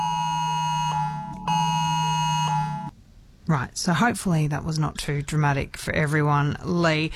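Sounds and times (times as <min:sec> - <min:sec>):
Australian Oz Alert harsh continuous electronic emergency alert tone: 0:00.0 - 0:02.9
speech: 0:03.5 - 0:07.1.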